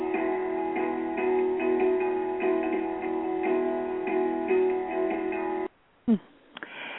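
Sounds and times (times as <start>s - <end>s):
upbeat song with pulsing beat: 0.0s - 5.7s.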